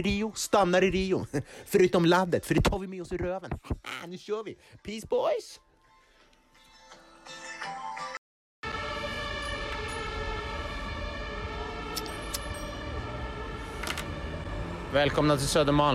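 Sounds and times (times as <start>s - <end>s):
speech: 0.0s - 5.6s, 14.9s - 15.9s
dense city street noise: 8.6s - 15.9s
fire engine sirens wailing on a city street: 8.6s - 15.9s.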